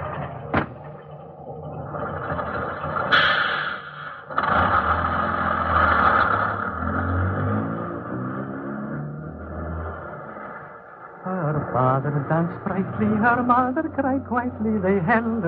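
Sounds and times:
bus engine rumbling and revving as it pulls away: 0.0 - 15.4
sharp door-like clunk: 0.5 - 1.0
speech: 12.0 - 15.4.

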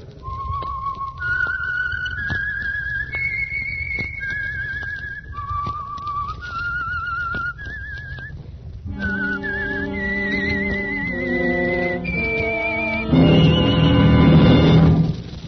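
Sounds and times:
lone whistler whistling a slow stepwise melody: 0.2 - 14.6
full orchestra playing loud bright chords: 11.1 - 15.2.

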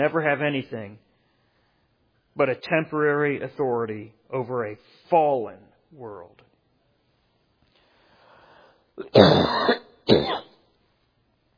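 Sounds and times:
speech: 0.0 - 1.1, 2.4 - 6.4, 9.0 - 10.4
person clearing throat: 9.0 - 10.6
person coughing: 9.0 - 10.6.

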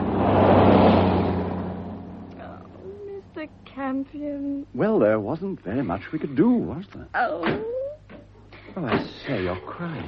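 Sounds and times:
rushing noise: 0.0 - 2.8
car engine humming: 0.0 - 7.4
speech: 3.9 - 7.8, 8.8 - 10.0.

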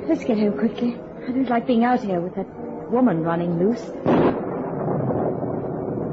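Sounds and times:
speech: 0.1 - 4.3
deep steady roll of thunder: 3.0 - 6.1
windy roar: 4.0 - 6.1.

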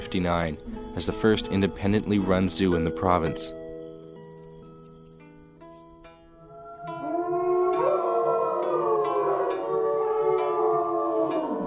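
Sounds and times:
speech: 0.1 - 3.6
several wolves howling in chorus: 6.5 - 11.6.

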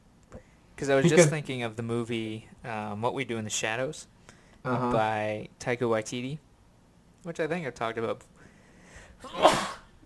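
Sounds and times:
speech: 0.8 - 6.4, 7.2 - 8.3, 9.2 - 9.7
person sneezing: 9.2 - 9.9.

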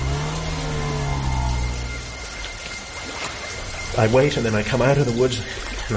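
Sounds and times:
car engine revving and pulling away: 0.0 - 2.7
speech: 4.0 - 5.9.

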